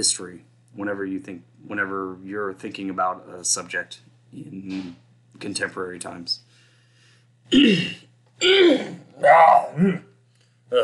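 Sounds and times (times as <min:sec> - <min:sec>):
speech: 0:00.0 - 0:06.5, 0:07.5 - 0:10.1
throat clearing: 0:07.5 - 0:10.1.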